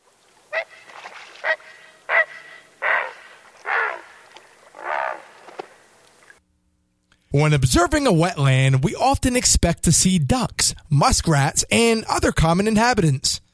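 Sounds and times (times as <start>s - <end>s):
great blue heron giving harsh hoarse croaking calls: 0.5s - 6.4s
speech: 7.4s - 13.4s.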